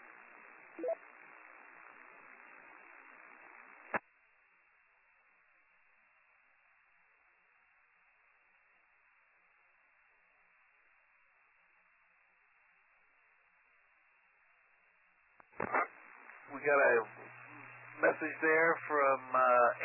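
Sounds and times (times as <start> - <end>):
radio static from weak repeater: 0.0 - 4.0, 15.4 - 19.8
speech: 16.6 - 17.4, 18.0 - 19.8.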